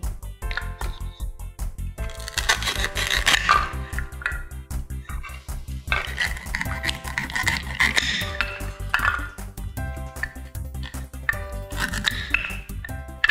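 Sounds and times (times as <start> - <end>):
steady music: 0.0 - 13.2
crunchy squishy cutting of food for soup: 2.0 - 4.2, 5.1 - 9.3, 10.3 - 13.2.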